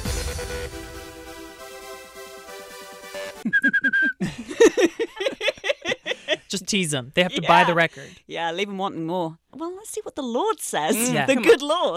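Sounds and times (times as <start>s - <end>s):
person whistling a tune: 3.4s - 4.2s
laughter: 3.4s - 6.6s
speech: 6.5s - 11.9s.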